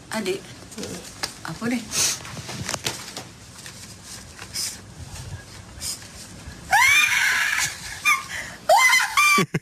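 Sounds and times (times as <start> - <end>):
speech: 0.2 - 2.2
rustling: 0.7 - 6.7
woman screaming high-pitched: 6.7 - 9.4.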